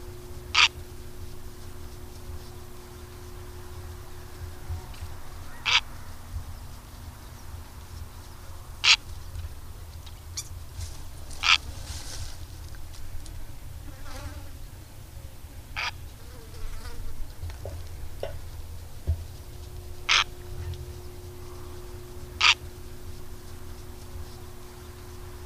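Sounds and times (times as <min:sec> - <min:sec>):
low steady rumble: 0:00.0 - 0:25.4
Purple heron giving short harsh rasping calls: 0:00.5 - 0:00.9, 0:05.2 - 0:06.3, 0:08.8 - 0:09.1, 0:11.4 - 0:11.7, 0:15.8 - 0:16.0, 0:19.8 - 0:24.0.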